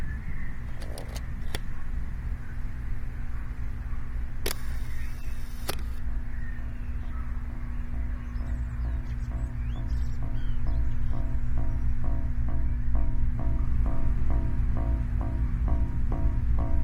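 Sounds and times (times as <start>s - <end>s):
steady low traffic rumble: 0.0s - 16.8s
camera being lifted from a windowsill: 0.7s - 1.6s, 4.4s - 6.0s
camera shutter clicks: 4.4s - 6.0s.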